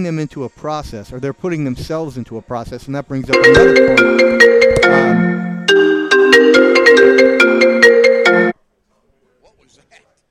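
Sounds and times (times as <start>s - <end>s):
speech: 0.0s - 5.5s
cell phone ringing with a bright electronic melody: 3.4s - 8.6s.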